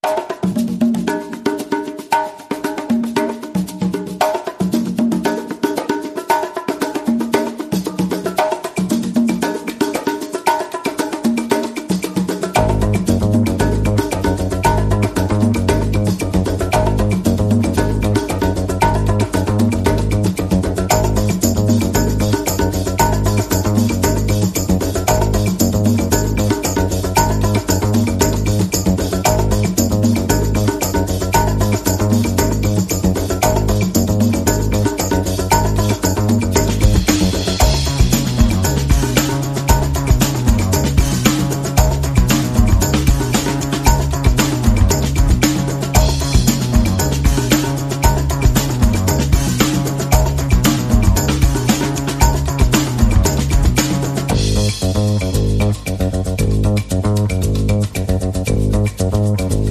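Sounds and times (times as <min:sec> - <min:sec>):
percussion: 0:00.0 - 0:59.6
bass: 0:12.0 - 0:59.6.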